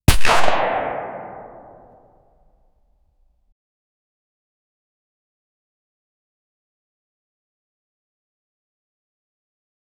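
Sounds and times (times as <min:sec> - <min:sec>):
realistic gunshot: 0:00.1 - 0:01.9.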